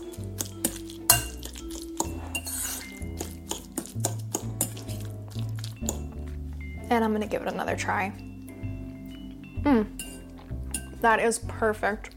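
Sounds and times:
utensils mixing avocado, lemon and pepper in a bowl: 0:00.0 - 0:06.8, 0:10.0 - 0:11.3
speech: 0:06.9 - 0:08.3, 0:11.0 - 0:12.1.

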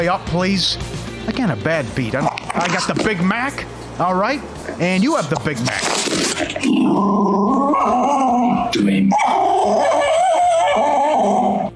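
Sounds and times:
speech: 0:00.0 - 0:10.1
angry dog snarling and growling: 0:04.6 - 0:11.7.

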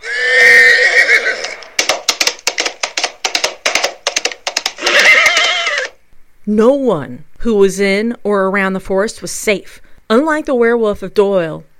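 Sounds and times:
horse neighing: 0:00.0 - 0:01.7, 0:04.8 - 0:06.0
horse hooves clopping: 0:00.0 - 0:06.0
speech: 0:06.5 - 0:11.7.

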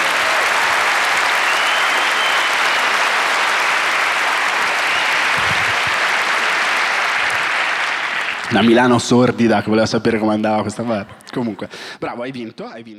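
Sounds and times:
audience applause: 0:00.0 - 0:09.4
speech: 0:08.5 - 0:12.9.

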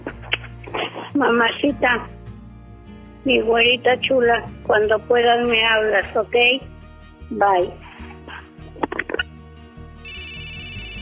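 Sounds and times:
speech: 0:01.2 - 0:02.2, 0:03.2 - 0:06.7, 0:07.3 - 0:07.8
phone ringing with repeating electronic ringtone: 0:10.0 - 0:11.0.

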